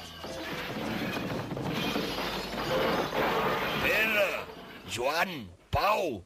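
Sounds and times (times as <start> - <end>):
ball hitting the floor and shattering: 0.4 - 4.8
speech: 4.9 - 6.2.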